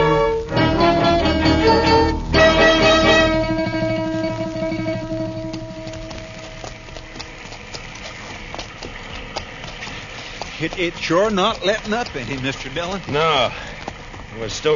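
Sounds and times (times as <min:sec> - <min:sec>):
sustained musical tone: 0:00.0 - 0:07.7
horse hooves clip-clopping: 0:00.0 - 0:14.7
speech: 0:10.8 - 0:13.7, 0:14.4 - 0:14.7.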